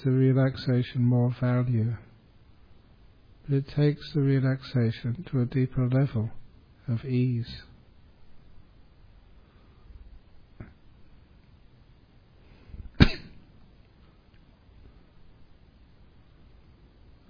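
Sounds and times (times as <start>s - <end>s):
speech: 0.0s - 2.1s, 3.5s - 7.7s
hiss: 0.0s - 17.2s
person coughing: 12.9s - 13.5s.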